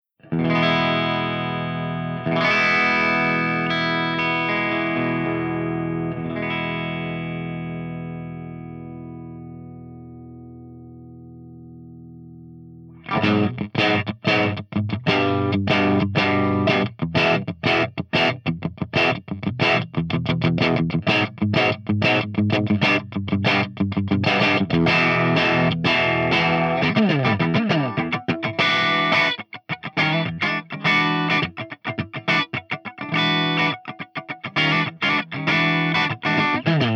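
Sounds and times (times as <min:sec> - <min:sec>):
EVH5150 channel one clean tone through V30 speaker: 0:00.2 - 0:36.9.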